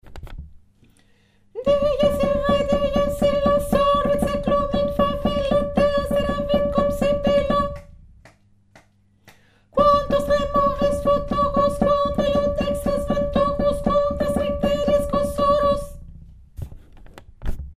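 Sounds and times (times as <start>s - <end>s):
chant melody: 1.6s - 7.9s, 9.8s - 16.0s.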